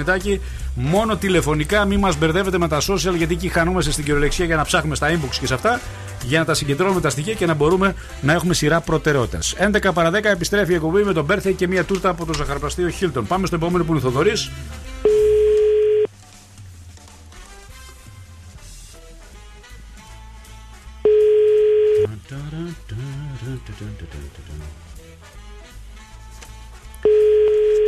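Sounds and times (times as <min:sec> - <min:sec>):
speech: 0:00.0 - 0:15.2, 0:23.6 - 0:24.9
music: 0:00.0 - 0:27.8
telephone ringback tone on an unanswered outgoing call: 0:15.1 - 0:16.1, 0:21.1 - 0:22.1, 0:27.0 - 0:27.8.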